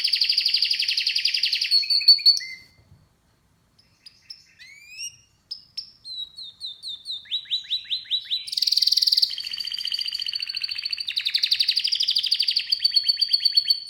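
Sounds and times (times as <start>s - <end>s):
canary singing: 0.0s - 2.8s, 3.8s - 13.8s.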